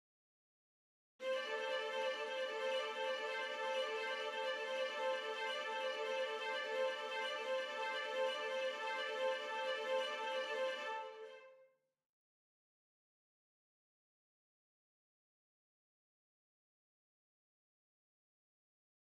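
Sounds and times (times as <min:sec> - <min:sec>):
violins playing: 0:01.2 - 0:11.5.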